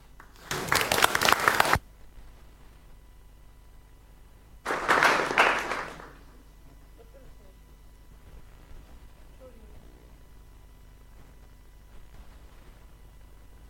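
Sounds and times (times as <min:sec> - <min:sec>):
audience applause for the projector team: 0:00.2 - 0:01.8, 0:04.7 - 0:06.4.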